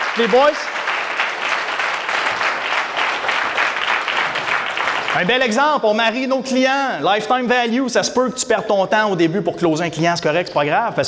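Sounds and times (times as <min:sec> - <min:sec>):
room full of people applauding: 0:00.0 - 0:05.7
speech: 0:00.2 - 0:00.8, 0:05.2 - 0:11.0.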